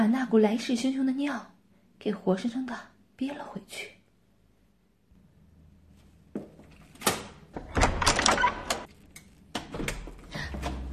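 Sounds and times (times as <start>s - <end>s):
speech: 0.2s - 4.0s
lock being worked clicking and rattling: 7.0s - 10.3s
door swinging open with clunk and creak: 7.0s - 10.9s.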